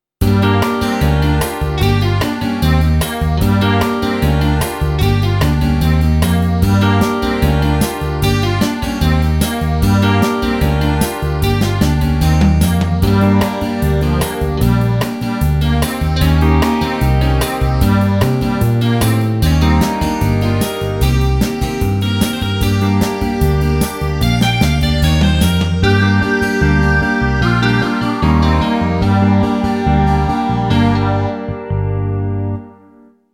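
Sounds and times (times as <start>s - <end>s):
fast blues rock music in G minor: 0.2s - 31.4s
country whistle: 24.9s - 31.4s.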